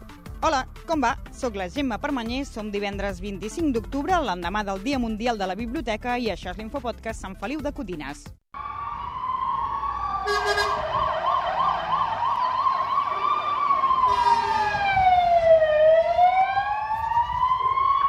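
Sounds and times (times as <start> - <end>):
speech: 0.4 - 8.4
fire engine sirens wailing on way to house fire: 8.6 - 18.0
traffic rumble: 8.6 - 18.0.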